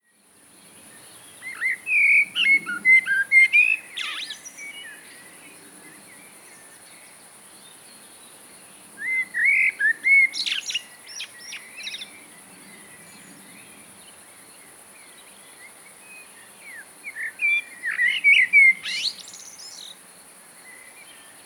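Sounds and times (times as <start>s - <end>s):
common blackbird singing fluted warbling phrases: 1.4s - 5.1s, 9.0s - 12.1s, 16.7s - 20.0s.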